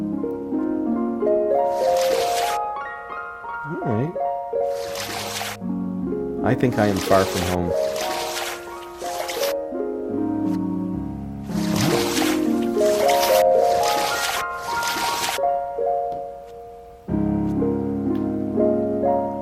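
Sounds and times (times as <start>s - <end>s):
steady tonal video game music: 0.0s - 19.4s
video game character swimming slowly through water, splashing and sloshing: 1.6s - 2.6s, 4.6s - 5.6s, 6.8s - 9.6s, 11.5s - 15.4s
speech: 6.4s - 8.1s.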